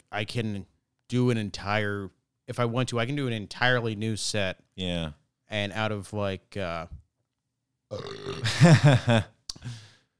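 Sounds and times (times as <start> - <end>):
speech: 0.2 - 7.0, 7.9 - 9.8
long loud belch: 7.9 - 8.7.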